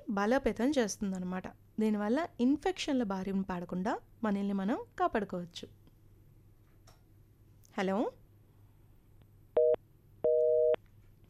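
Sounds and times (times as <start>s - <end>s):
faint low hum: 0.1s - 11.2s
speech: 0.2s - 5.8s, 7.8s - 8.2s
telephone busy tone after a dropped phone call: 9.6s - 10.8s.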